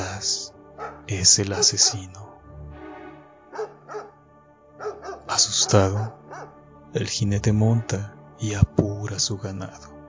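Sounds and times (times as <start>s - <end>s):
aggressive dog barks: 0.7s - 2.4s, 3.4s - 4.2s, 4.8s - 6.6s
speech: 1.1s - 2.2s, 5.7s - 6.2s, 6.9s - 10.0s.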